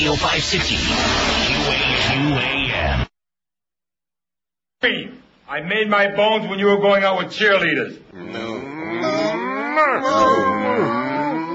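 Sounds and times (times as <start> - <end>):
speech: 0.0 - 3.1, 4.8 - 9.2, 9.8 - 11.0
cow mooing in a long drawn-out call: 8.2 - 11.5.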